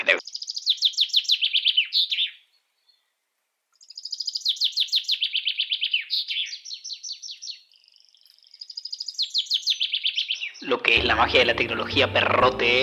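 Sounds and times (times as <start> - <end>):
small bird singing high-pitched trilled phrases: 0.2 - 3.2, 3.8 - 10.8
speech: 10.8 - 12.8.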